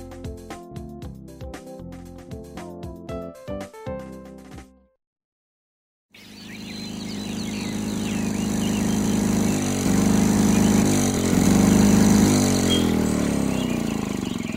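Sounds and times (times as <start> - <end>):
lawnmower engine running: 6.2 - 14.5.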